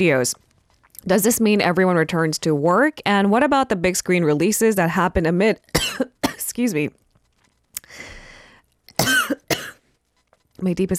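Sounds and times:
speech: 0.0s - 7.0s, 10.6s - 10.9s
harsh coughing with raspy breathy wheeze: 5.8s - 6.4s, 9.0s - 9.8s.

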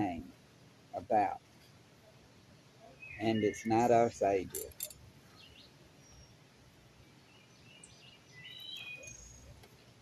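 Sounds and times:
soft steady hiss: 0.0s - 9.9s
speech: 1.0s - 1.4s, 3.2s - 4.8s
faint high bird chirps outdoors: 1.2s - 4.6s, 5.2s - 9.9s.

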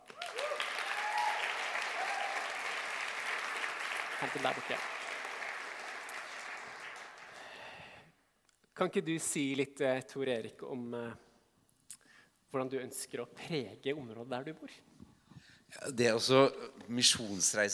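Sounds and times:
audience applause: 0.0s - 8.0s
speech: 4.2s - 5.0s, 8.8s - 11.3s, 12.5s - 15.0s, 15.7s - 17.7s.

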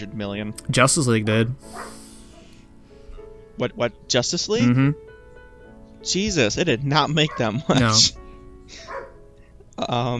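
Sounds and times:
speech: 0.0s - 2.0s, 3.6s - 5.1s, 6.0s - 8.9s, 9.8s - 10.1s
dogs barking: 1.0s - 2.6s, 7.1s - 8.1s, 8.7s - 9.2s.

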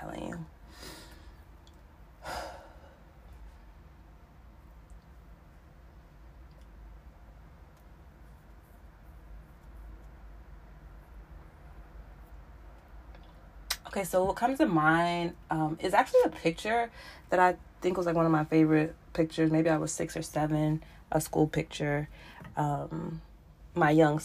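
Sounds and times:
deep breath sigh: 2.2s - 3.1s
speech: 14.0s - 24.2s.

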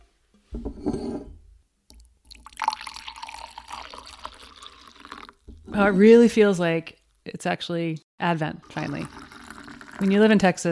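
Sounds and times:
mulled wine with orange and lemon bitters pouring into a cup: 2.0s - 5.5s, 8.6s - 10.6s
speech: 5.8s - 9.2s, 10.0s - 10.7s.

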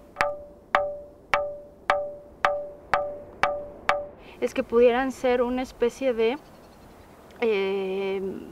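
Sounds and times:
ringing rock struck, bell-like metallic tone: 0.0s - 4.2s
speech: 4.4s - 6.5s, 7.4s - 8.5s.

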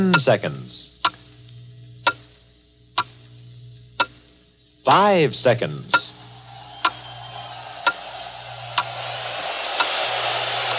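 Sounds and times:
clock ticking: 0.0s - 0.4s, 1.0s - 1.3s, 2.0s - 2.3s, 3.0s - 3.2s, 4.0s - 4.3s, 5.9s - 6.2s
speech: 0.0s - 1.0s, 4.9s - 6.2s
low constant hum: 0.0s - 10.7s.

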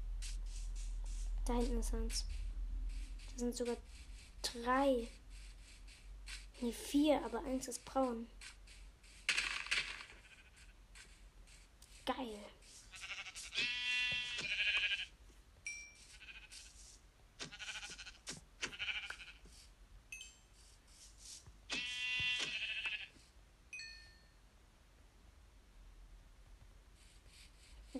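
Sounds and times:
shuffling noises: 0.0s - 19.7s, 20.6s - 23.0s
speech: 1.5s - 2.4s, 3.4s - 5.2s, 6.6s - 8.6s, 12.1s - 12.6s
video game sheep bleating: 12.9s - 15.1s, 17.5s - 19.4s, 21.7s - 23.1s.

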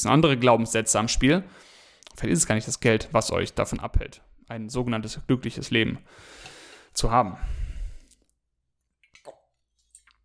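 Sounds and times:
speech: 0.0s - 7.6s
person drinking beside a microphone, wet sips and swallows: 9.0s - 10.2s.

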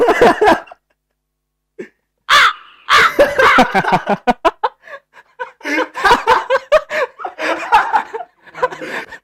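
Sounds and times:
voice imitating a crow with harsh caws: 2.3s - 3.2s
chuckling and laughter: 2.9s - 9.2s.

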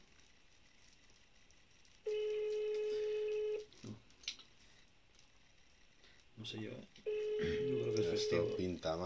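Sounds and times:
telephone ringback tone while placing a call: 2.1s - 3.7s, 7.1s - 8.7s
speech: 6.4s - 9.0s.

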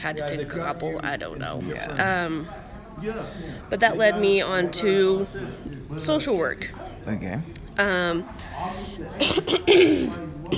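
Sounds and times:
speech: 0.0s - 10.5s
person coughing while eating a sandwich: 9.2s - 10.5s.

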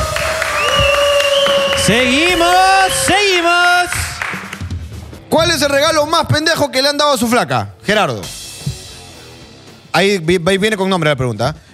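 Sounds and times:
whooping cheers: 0.0s - 4.0s
audience applause: 0.0s - 4.6s
sustained whistles: 0.2s - 3.2s
speech: 1.8s - 3.2s, 5.3s - 8.4s, 10.0s - 11.6s.

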